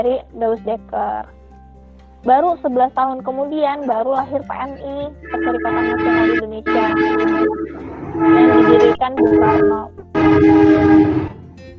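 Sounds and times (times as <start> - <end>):
speech: 0.0 - 1.4, 2.2 - 11.4
horn blast of a passing train: 5.2 - 11.5.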